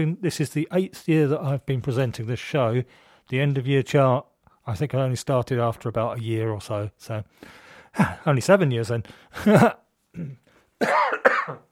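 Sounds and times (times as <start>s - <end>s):
speech: 0.0s - 11.7s
person clearing throat with a rasping sound: 9.4s - 11.7s
person coughing with short hacking coughs: 9.4s - 11.7s.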